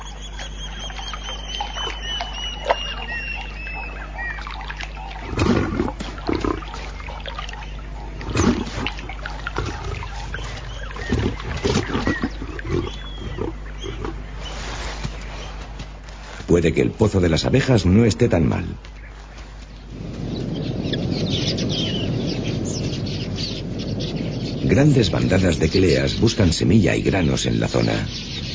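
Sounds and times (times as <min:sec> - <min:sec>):
outdoor hum: 0:00.0 - 0:28.5
wild lioness nursing a cub giving roaring growls: 0:02.0 - 0:14.3
speech: 0:16.6 - 0:19.0, 0:24.8 - 0:28.4.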